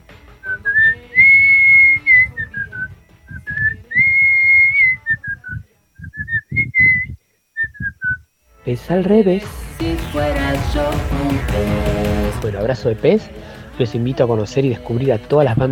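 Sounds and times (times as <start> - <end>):
person whistling a melodic tune: 0.4 - 8.2
speech: 8.7 - 15.7.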